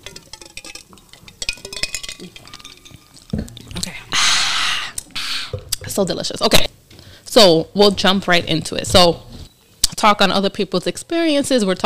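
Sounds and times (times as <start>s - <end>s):
drinking glasses clinking together in a toast: 0.0s - 3.5s
speech: 6.0s - 6.7s, 7.4s - 9.3s, 10.0s - 11.8s.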